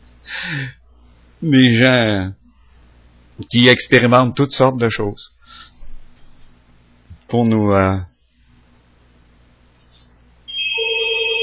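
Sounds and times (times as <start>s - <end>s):
speech: 0.2s - 0.8s, 1.4s - 2.4s, 3.4s - 5.7s, 7.3s - 8.1s
telephone ringing with electronic tone: 10.5s - 11.4s.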